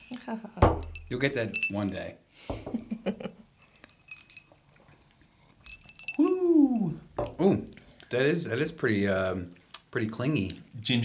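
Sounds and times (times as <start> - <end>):
short high tinkling tones: 0.0 - 2.0, 3.5 - 4.6, 5.6 - 7.0
glasses clinking in a toast: 0.0 - 2.8, 3.5 - 7.5
speech: 0.1 - 3.3, 7.4 - 11.0.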